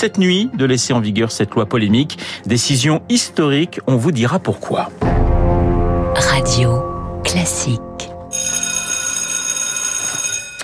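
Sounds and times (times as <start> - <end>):
speech: 0.0 - 5.2, 6.2 - 8.1
school bell with shrill electric ringing: 8.3 - 10.6.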